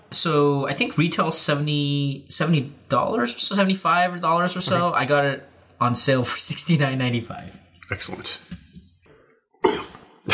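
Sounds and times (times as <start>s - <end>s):
speech: 0.1s - 8.6s
person coughing after tasting a drink: 9.6s - 10.3s.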